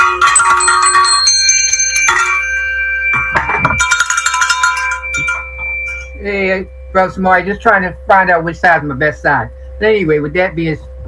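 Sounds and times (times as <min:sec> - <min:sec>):
bright metallic bell ringing: 0:00.0 - 0:07.5
speech: 0:06.5 - 0:11.0.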